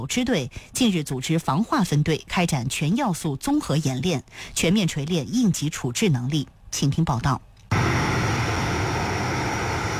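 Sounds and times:
speech: 0:00.0 - 0:07.5
fixed-wing anti-submarine patrol aircraft engine and propeller roar: 0:07.7 - 0:09.9.

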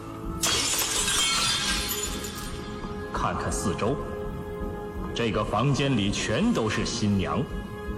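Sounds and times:
glass shards tinkling and settling: 0:00.4 - 0:02.9
large stage prop glass pane shattering: 0:00.4 - 0:03.0
speech: 0:03.2 - 0:04.1, 0:05.2 - 0:07.8.

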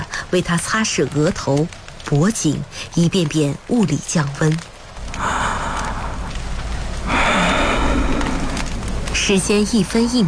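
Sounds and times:
speech: 0:00.3 - 0:05.3, 0:09.3 - 0:10.2
heavy raspy breathing of an old man with a high fever: 0:05.1 - 0:06.4, 0:07.0 - 0:08.9.

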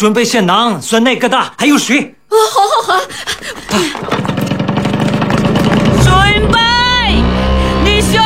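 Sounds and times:
speech: 0:00.0 - 0:04.5
motorcycle engine starting and idling: 0:04.0 - 0:08.1.

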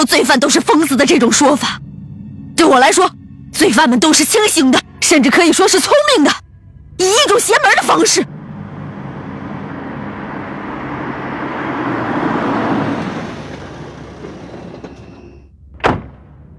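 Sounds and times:
speech: 0:00.0 - 0:01.9, 0:02.6 - 0:06.4, 0:07.0 - 0:08.3
car engine and road noise approaching: 0:05.8 - 0:16.5
sharp thud: 0:15.8 - 0:16.4.

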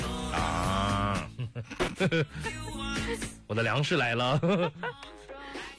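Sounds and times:
person imitating a cow mooing: 0:00.2 - 0:01.4
speech: 0:01.6 - 0:02.6, 0:03.1 - 0:05.0.

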